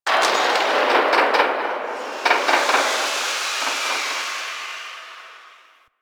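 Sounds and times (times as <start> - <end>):
construction site ambience: 0.0 - 5.9.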